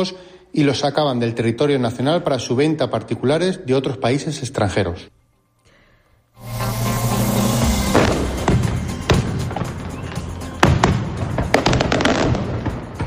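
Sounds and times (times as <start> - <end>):
speech: 0.0 - 5.2
fireworks display crackling and banging: 6.7 - 13.0.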